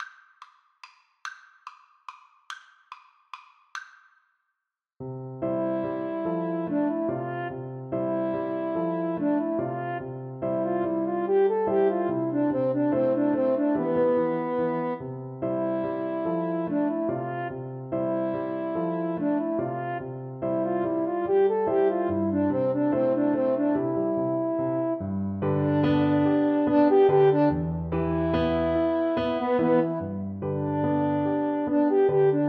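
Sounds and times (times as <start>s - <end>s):
horn: 6.4s - 32.4s.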